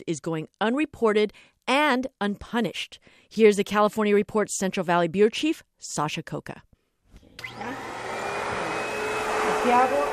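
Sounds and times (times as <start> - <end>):
speech: 0.0 - 6.7, 7.4 - 7.8, 9.6 - 10.1
backpack vacuum cleaner motor running: 7.2 - 10.1.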